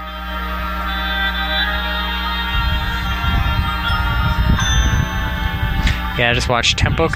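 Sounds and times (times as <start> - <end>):
bells or crotales played by a band's front ensemble: 0.0 - 6.8
sustained layered band ensemble playing: 0.0 - 7.1
low rumbling percussion: 1.8 - 7.1
speech: 6.2 - 7.1.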